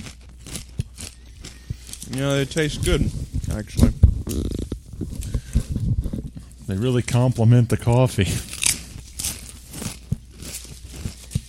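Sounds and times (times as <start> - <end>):
chewing Blaze Doritos tortilla chips: 0.0 - 5.8, 8.2 - 11.4
speech: 2.1 - 4.6, 6.7 - 8.5.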